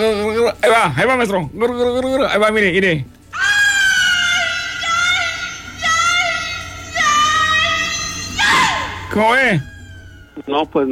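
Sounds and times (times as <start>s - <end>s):
speech: 0.0s - 3.2s, 9.2s - 9.7s, 10.4s - 10.8s
loud high wailing scream of the weeping woman legend: 3.3s - 10.8s.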